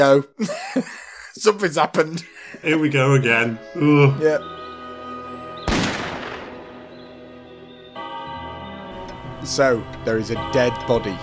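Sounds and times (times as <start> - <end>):
speech: 0.0 - 4.6, 9.4 - 11.2
laughter: 0.4 - 2.6
single loud gunshot with rumble: 5.6 - 6.9.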